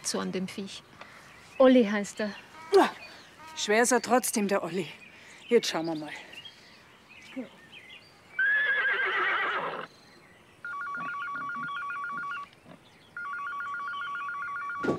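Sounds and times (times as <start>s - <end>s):
speech: 0.1s - 1.0s, 1.6s - 6.3s, 7.4s - 7.6s
horse whinnying: 8.4s - 9.9s, 10.7s - 12.5s
telephone ringing with rapid trilling bursts: 10.6s - 12.5s, 13.2s - 14.9s.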